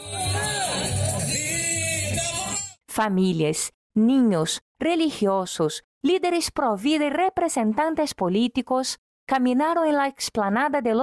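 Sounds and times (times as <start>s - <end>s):
people shouting: 0.0s - 1.6s
large crowd chanting a slogan in unison at a march outdoors: 0.0s - 2.6s
speech: 3.0s - 11.0s.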